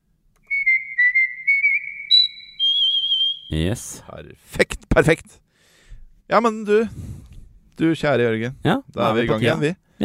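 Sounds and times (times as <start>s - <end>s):
person whistling a tune: 0.4s - 3.5s
speech: 3.5s - 5.4s, 6.3s - 7.1s, 7.8s - 10.0s.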